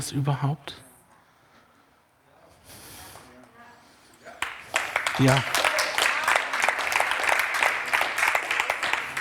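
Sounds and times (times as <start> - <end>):
speech: 0.0 - 0.9, 5.2 - 5.6
crowd applauding: 4.3 - 9.2.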